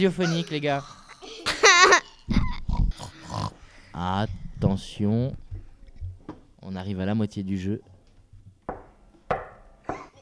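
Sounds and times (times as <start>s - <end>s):
speech: 0.0s - 1.0s, 4.0s - 5.4s, 6.6s - 7.9s
people imitating a pig's grunting: 0.1s - 3.9s.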